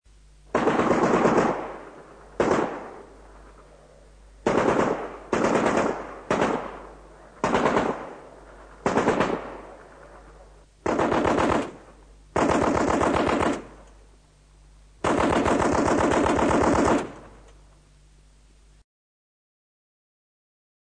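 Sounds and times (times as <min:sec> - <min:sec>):
Maxim machine gun firing: 0:00.5 - 0:03.6, 0:04.4 - 0:13.8, 0:15.0 - 0:17.5.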